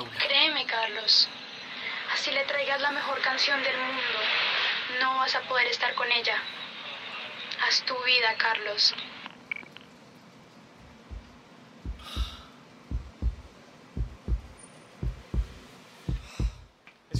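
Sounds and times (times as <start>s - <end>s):
faint breathy hiss: 1.0s - 5.8s, 10.0s - 17.1s
speech: 1.1s - 1.3s, 2.2s - 6.6s, 7.6s - 9.2s
heartbeat thumping in double beats: 10.8s - 17.1s.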